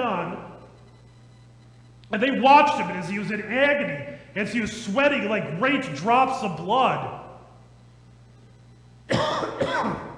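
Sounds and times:
speech: 2.1s - 7.2s
person coughing with a harsh raspy throat sound: 9.1s - 10.1s.

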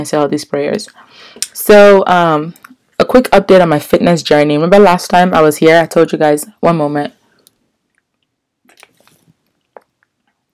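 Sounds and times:
speech: 0.0s - 7.2s
lip smacks: 8.0s - 10.5s
person drinking water: 8.6s - 10.2s.

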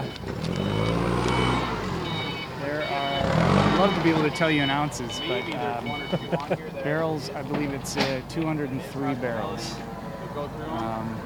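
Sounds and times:
high electronic reversing beeps of a delivery truck: 0.0s - 7.2s
large beverage delivery truck idling: 0.0s - 11.2s
speech: 3.8s - 11.2s
laughter: 5.2s - 7.2s.

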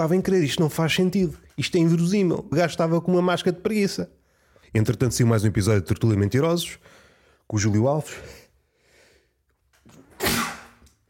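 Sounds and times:
speech: 0.0s - 8.4s
soft inhaling breaths: 6.8s - 7.5s, 8.5s - 9.5s
person sneezing: 10.0s - 10.9s.

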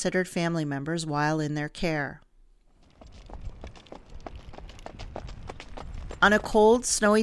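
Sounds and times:
speech: 0.0s - 2.2s, 6.2s - 7.2s
soft outdoor background: 0.0s - 7.2s
horses running on a racetrack: 2.6s - 7.2s.

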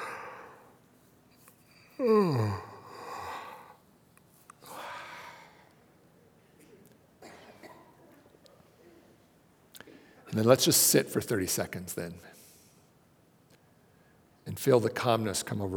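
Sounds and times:
speech: 2.0s - 2.6s, 10.4s - 12.4s, 14.6s - 15.7s
person yawning into a voiced groan as a stress-reduction exercise: 2.0s - 3.8s.

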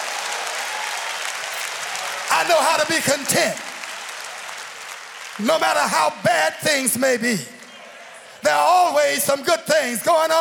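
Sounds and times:
audience clapping hands: 0.0s - 8.2s
speech: 2.4s - 3.7s, 5.4s - 7.5s, 8.4s - 10.3s.

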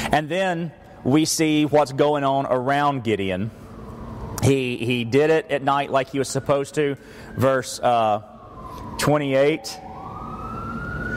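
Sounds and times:
speech: 0.1s - 3.6s, 4.4s - 9.8s
emergency vehicle siren wailing outside: 2.3s - 11.1s.

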